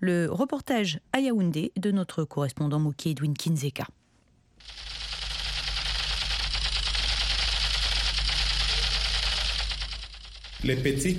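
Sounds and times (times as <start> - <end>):
speech: 0.0 - 4.0, 10.6 - 11.1
toy Kalashnikov gun firing in a wooded area of Yaoundé: 4.6 - 11.1.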